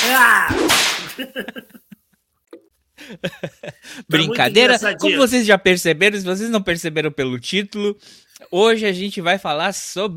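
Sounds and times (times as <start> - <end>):
whip crack: 0.0 - 1.2
speech: 0.2 - 1.8, 3.1 - 10.1
laughter: 1.0 - 2.2, 3.0 - 5.3.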